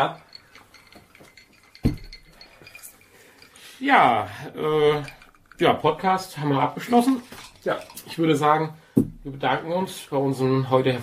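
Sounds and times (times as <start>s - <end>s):
speech: 0.0s - 0.2s, 3.8s - 11.0s
glasses clinking in a toast: 0.0s - 8.7s.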